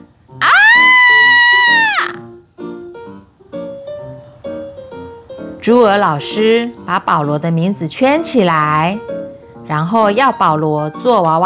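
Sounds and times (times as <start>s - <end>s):
girl screaming: 0.4s - 2.2s
speech: 5.6s - 9.1s, 9.7s - 11.4s.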